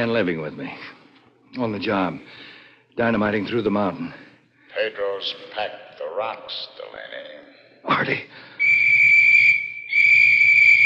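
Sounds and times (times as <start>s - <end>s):
speech: 0.0s - 8.5s
shrill whistles blowing: 8.6s - 10.8s.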